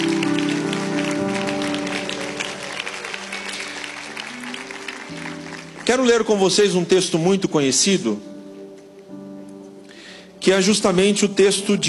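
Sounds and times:
congregation applauding: 0.0s - 7.0s
speech: 5.9s - 8.3s, 10.4s - 11.8s.

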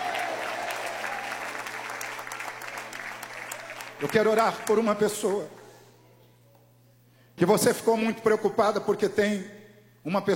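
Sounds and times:
room full of people clapping: 0.0s - 5.5s
speech: 4.0s - 5.6s, 7.4s - 10.3s.

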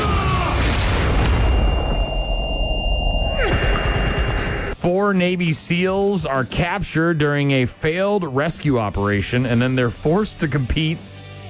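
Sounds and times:
grenade explosions in a combat scene: 0.0s - 4.9s
speech: 4.8s - 11.1s.

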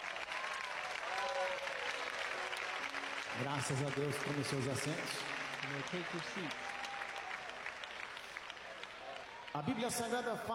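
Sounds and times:
congregation clapping hands: 0.0s - 10.5s
speech: 3.4s - 6.7s, 9.6s - 10.5s.

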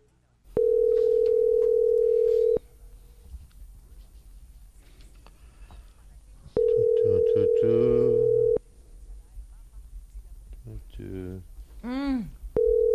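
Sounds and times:
ringing tone of an unanswered phone call: 0.5s - 2.6s, 6.6s - 8.6s, 12.6s - 12.9s.

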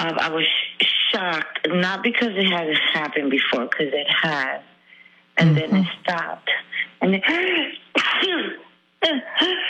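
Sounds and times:
speech: 0.2s - 0.6s, 1.2s - 4.7s, 5.4s - 9.6s
person sneezing: 5.4s - 6.0s.

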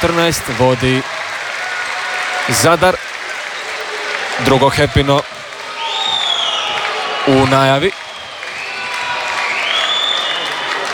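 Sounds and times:
speech: 0.0s - 1.3s, 2.4s - 3.1s, 4.4s - 5.3s, 7.2s - 8.0s
steady roar of basketball arena crowd: 0.0s - 10.9s
home crowd at a basketball game whistling at visiting fans: 3.2s - 10.9s.

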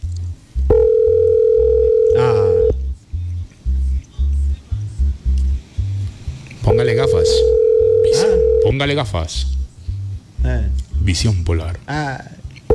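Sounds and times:
short low pulsing telephone tone bursts: 0.0s - 11.8s, 12.4s - 12.7s
telephone ringing tone while a call is placed: 0.7s - 2.7s, 6.7s - 8.7s
speech: 8.8s - 9.6s, 11.1s - 12.4s.

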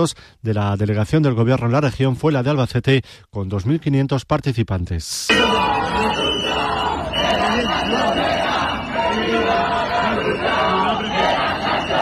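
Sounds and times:
speech: 0.0s - 8.4s
large crowd chanting slogans at a housing protest: 5.3s - 12.0s.

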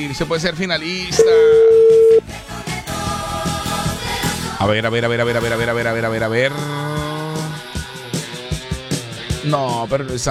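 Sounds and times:
speech: 0.0s - 2.6s, 4.6s - 6.8s, 9.4s - 10.2s
telephone tone after a dropped call: 1.2s - 2.2s
rhythmic music with a thumping beat: 1.2s - 10.2s.

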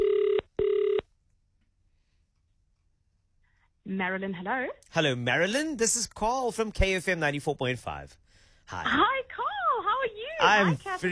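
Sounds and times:
electronic telephone ringback tones from the caller's end: 0.0s - 1.0s
speech: 4.0s - 9.2s, 10.4s - 11.1s.

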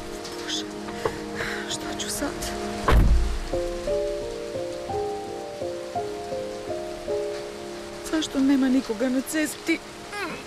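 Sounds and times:
steady rain falling on a road: 0.0s - 10.4s
low thump: 2.8s - 3.6s
speech: 8.3s - 10.0s.

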